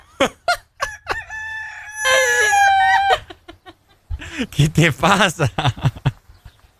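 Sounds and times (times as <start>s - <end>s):
laughter: 0.0s - 1.4s, 2.0s - 6.4s
rooster clucking and squawking: 0.5s - 4.1s
rooster crowing: 0.8s - 3.4s
speech: 4.4s - 6.0s.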